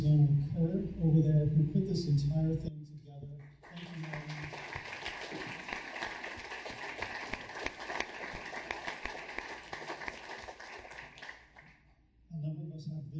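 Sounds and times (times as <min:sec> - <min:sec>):
speech: 0:00.0 - 0:03.0
audience applause for a panel of speakers: 0:03.5 - 0:11.8.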